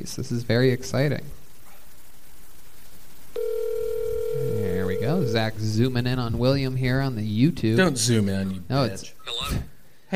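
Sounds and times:
speech: 0.0 - 1.4, 5.1 - 10.1
faint noise: 0.0 - 10.1
electronic ringback tone over a speakerphone: 3.4 - 5.4.

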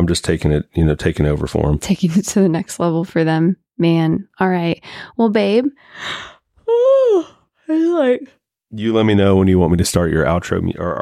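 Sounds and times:
speech: 0.1 - 11.0
person yawning: 6.6 - 7.4.

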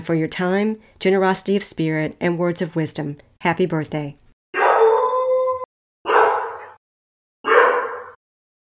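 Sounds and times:
speech: 0.0 - 4.2
puppy whining and howling: 4.6 - 6.8.

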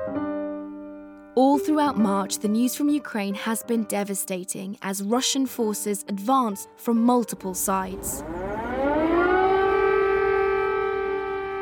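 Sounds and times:
speech: 1.4 - 8.4
air raid sirens wailing over Kyiv Ukraine during the Russian invasion: 7.5 - 11.6.

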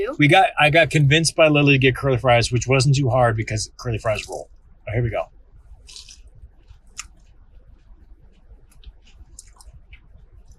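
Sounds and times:
speech: 0.0 - 6.1
steady moist chewing of chicken nuggets: 5.7 - 10.5
biting into a fried chicken nugget: 5.8 - 7.3, 8.3 - 10.5.

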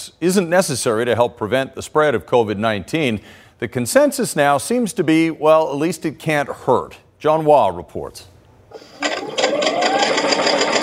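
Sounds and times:
speech: 0.2 - 8.9
sewing machine stitching fabric: 8.8 - 10.8.

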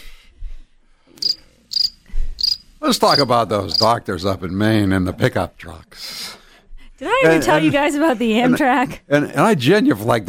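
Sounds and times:
crickets chirping sound effect: 1.2 - 3.9
speech: 2.8 - 6.4, 7.0 - 10.2.

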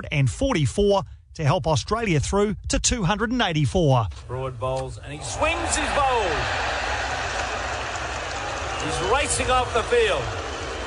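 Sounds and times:
speech: 0.0 - 6.7, 8.8 - 10.4
large cricket crowd booing: 5.2 - 10.8.

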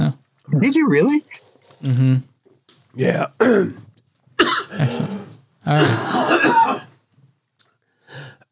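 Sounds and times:
speech: 0.6 - 2.3, 2.9 - 3.8, 4.7 - 6.8
person coughing and clearing throat with candy stuck in the throat: 3.4 - 3.8, 4.4 - 6.9.

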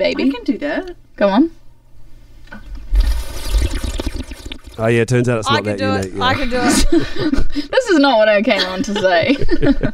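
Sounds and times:
speech: 0.0 - 1.6, 4.8 - 9.9
person making wet gurgling bubbling noise with mouth and water imitating a bong: 2.7 - 5.0.

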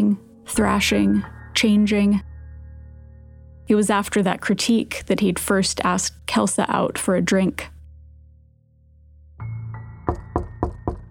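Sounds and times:
speech: 0.0 - 2.3, 3.7 - 7.7
low continuous room hum: 0.0 - 9.5
knocking on a door: 10.0 - 11.1.

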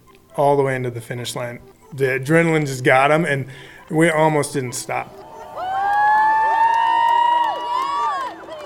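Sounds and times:
speech: 0.4 - 5.2
crowd cheering and yelling on a dock: 5.2 - 8.6.

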